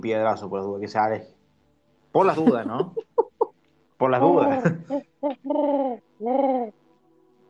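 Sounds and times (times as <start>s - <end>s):
speech: 0.0s - 1.4s, 2.1s - 3.1s, 4.0s - 6.8s
laughter: 2.3s - 3.5s
pigeon cooing: 4.4s - 6.8s.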